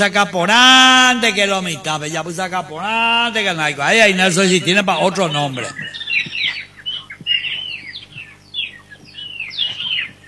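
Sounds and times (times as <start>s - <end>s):
speech: 0.0s - 6.0s
bird calling in chirpy bursts with squawky notes: 3.9s - 10.2s.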